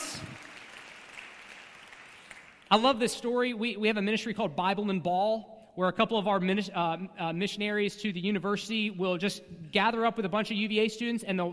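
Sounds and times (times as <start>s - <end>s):
audience clapping: 0.0s - 2.8s
speech: 2.7s - 11.5s.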